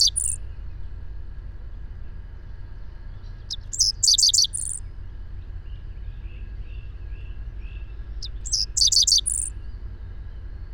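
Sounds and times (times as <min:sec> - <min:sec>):
bird song: 0:00.0 - 0:00.6, 0:02.4 - 0:04.8, 0:05.4 - 0:10.7
low steady hum: 0:00.0 - 0:10.7.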